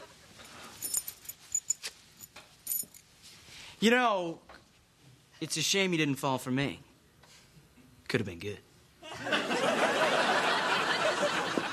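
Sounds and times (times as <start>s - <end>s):
bunch of keys jingling and clinking: 0.7s - 3.1s
speech: 3.8s - 4.5s, 5.4s - 6.9s, 8.1s - 9.4s
laughter: 9.0s - 11.7s.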